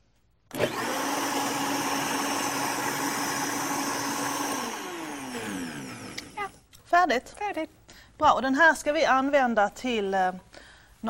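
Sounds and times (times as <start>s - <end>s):
kitchen blender mixing berries: 0.5s - 6.7s
speech: 7.0s - 11.0s.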